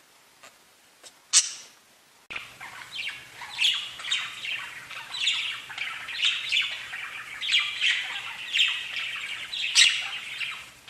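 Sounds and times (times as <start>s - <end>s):
faint low hum: 0.0s - 10.8s
budgerigar warbling: 2.3s - 10.8s.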